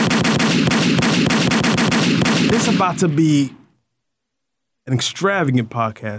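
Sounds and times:
rapid burst of automatic weapon gunfire: 0.0 - 3.6
speech: 2.7 - 3.6, 4.8 - 6.1.

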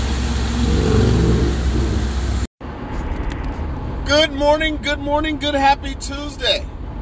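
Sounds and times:
car engine humming inside a moving vehicle: 0.0 - 2.5
low rumbling road noise in a car cabin: 0.0 - 6.9
speech: 4.1 - 6.7.

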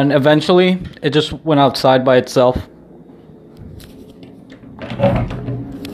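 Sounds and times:
speech: 0.0 - 2.7
door creaking open to let a lizard outside: 4.5 - 5.9.

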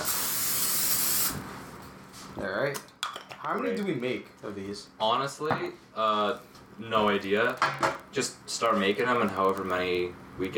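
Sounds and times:
aerosol cooking spray hiss: 0.0 - 1.4
speech: 2.4 - 10.5.

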